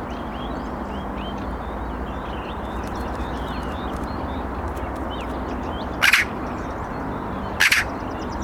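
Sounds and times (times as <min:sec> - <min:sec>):
small birds chirping: 0:00.1 - 0:08.4
Eurasian magpie Pica pica harsh chack calls: 0:02.6 - 0:05.4, 0:06.0 - 0:06.4, 0:07.6 - 0:07.9.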